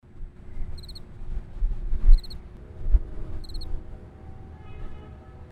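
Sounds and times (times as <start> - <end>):
cricket chirping: 0.8 - 1.0, 2.0 - 2.4, 3.4 - 3.8.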